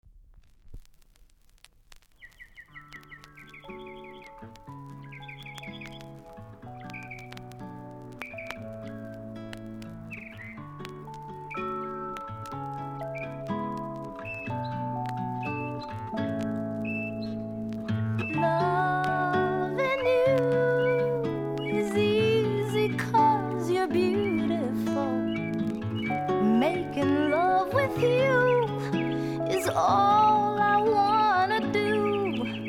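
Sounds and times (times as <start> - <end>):
birds: 2.2 - 7.4, 8.1 - 9.2, 10.0 - 32.6
music: 2.6 - 32.6.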